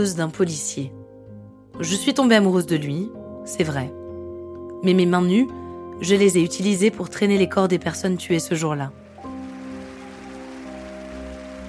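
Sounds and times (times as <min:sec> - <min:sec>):
speech: 0:00.0 - 0:01.0, 0:01.8 - 0:04.0, 0:04.8 - 0:09.0
sustained musical chord: 0:09.0 - 0:11.6
studio audience applause: 0:09.1 - 0:11.6.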